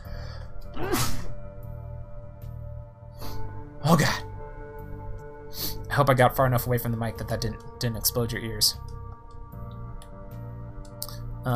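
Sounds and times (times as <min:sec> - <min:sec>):
music: 0:00.0 - 0:11.5
sneeze: 0:00.8 - 0:01.3
speech: 0:03.9 - 0:04.2, 0:06.0 - 0:09.0.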